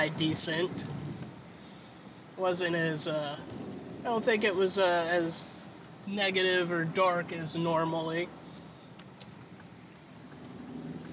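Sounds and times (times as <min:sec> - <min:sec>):
speech: 0:00.0 - 0:01.0, 0:02.4 - 0:08.4
low rumble of road traffic: 0:00.0 - 0:11.1.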